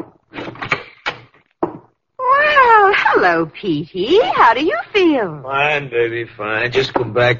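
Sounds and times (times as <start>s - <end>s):
door opening as someone enters: 0.3s - 1.4s
speech: 3.2s - 7.3s.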